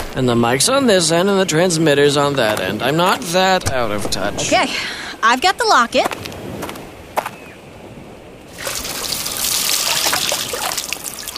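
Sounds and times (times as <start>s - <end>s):
speech: 0.2s - 6.3s
gasoline pouring from a can soaking a car's interior: 8.6s - 11.3s.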